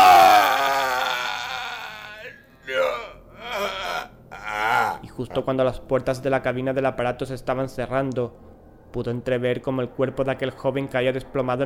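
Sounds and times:
heart-rending high-pitched scream: 0.0s - 5.0s
speech: 5.2s - 11.6s.

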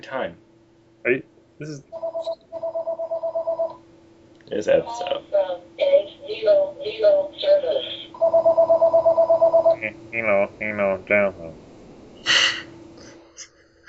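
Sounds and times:
speech: 0.0s - 2.5s, 4.5s - 11.6s
electronic telephone ringing: 2.0s - 3.8s, 6.3s - 9.9s
sharp hiss or breath: 12.2s - 13.2s.

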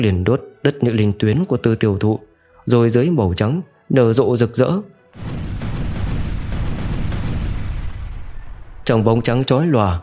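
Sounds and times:
speech: 0.0s - 5.3s, 8.9s - 10.0s
massive explosion with a heavy low rumble: 5.2s - 8.9s.

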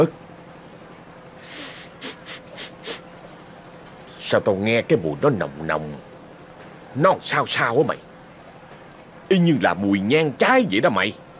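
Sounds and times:
speech: 0.0s - 0.2s, 4.3s - 6.1s, 6.9s - 8.1s, 9.3s - 11.2s
man sniffing the air at a pot of crab noodle soup: 1.4s - 3.0s.

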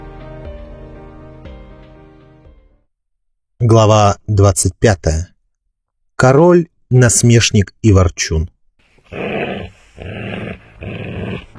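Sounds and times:
speech: 3.6s - 5.3s, 6.2s - 9.2s
dog growling: 9.0s - 11.5s.

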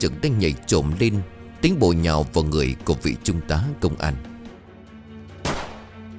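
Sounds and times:
speech: 0.0s - 4.3s
gunshot fired inside a closed house: 5.4s - 6.0s.

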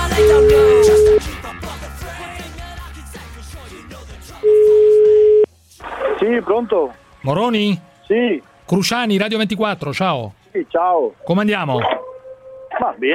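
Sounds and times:
telephone ringback tone while placing a call: 0.2s - 1.2s, 4.5s - 5.5s
speech: 6.2s - 12.0s, 12.8s - 13.1s.

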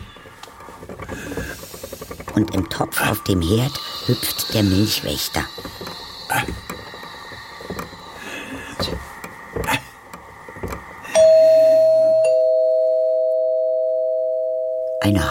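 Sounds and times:
speech: 2.4s - 5.7s
doorbell ringing: 11.1s - 15.2s.

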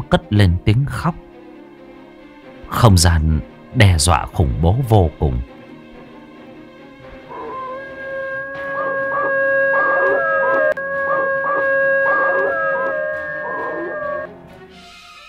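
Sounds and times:
speech: 0.1s - 1.3s, 2.7s - 5.5s
wolves howling at the moon near a village beside an old forest: 7.1s - 14.3s.

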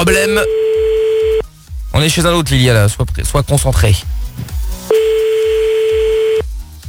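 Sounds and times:
speech: 0.0s - 0.6s, 2.0s - 5.0s
telephone tone while placing a call: 0.2s - 1.4s, 4.9s - 6.4s.

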